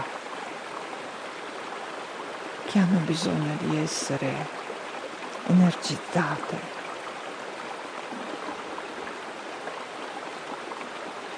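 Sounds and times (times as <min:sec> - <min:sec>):
flowing stream rushing and babbling: 0:00.0 - 0:11.3
speech: 0:02.7 - 0:04.6, 0:05.4 - 0:06.8.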